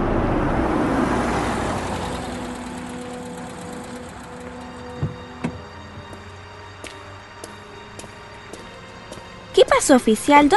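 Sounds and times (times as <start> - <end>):
police car engine rumbling and idling: 0.0 - 6.8
speech: 9.8 - 10.5.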